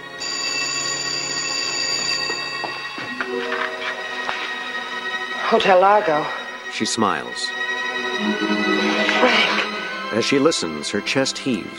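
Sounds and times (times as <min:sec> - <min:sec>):
telephone ringing: 0:00.0 - 0:05.1
speech: 0:05.5 - 0:07.6, 0:08.2 - 0:11.7.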